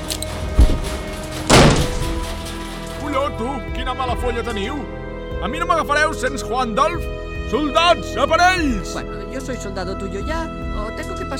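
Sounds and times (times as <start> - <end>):
mop thrown against a door: 0.5 - 2.5
speech: 3.4 - 11.3.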